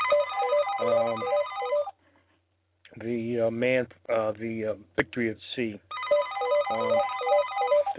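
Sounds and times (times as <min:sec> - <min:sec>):
telephone ringing with electronic trilling: 0:00.0 - 0:01.9, 0:05.9 - 0:07.9
speech: 0:03.0 - 0:06.0, 0:06.7 - 0:07.1.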